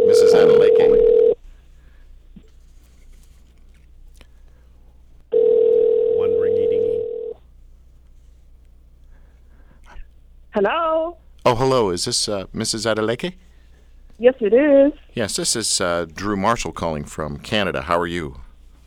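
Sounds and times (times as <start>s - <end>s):
ringback tone of an outgoing phone call from Canada: 0.0s - 1.4s, 5.3s - 7.4s
speech: 10.6s - 13.5s, 14.2s - 18.5s.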